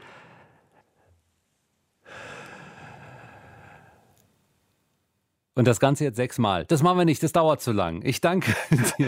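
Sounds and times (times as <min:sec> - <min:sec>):
slow breathing during a breathing exercise, inhaling and exhaling: 0:00.0 - 0:04.4
speech: 0:05.6 - 0:09.0
laughter: 0:08.4 - 0:09.0.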